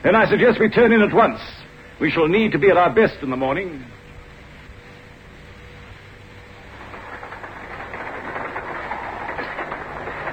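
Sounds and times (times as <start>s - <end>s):
speech: 0.0s - 4.0s
train rolling along the rails: 6.6s - 10.3s.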